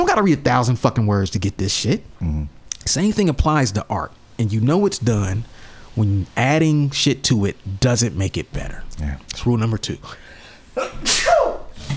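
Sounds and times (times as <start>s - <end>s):
speech: 0.2s - 10.2s, 10.8s - 11.6s
person sneezing: 10.8s - 11.9s.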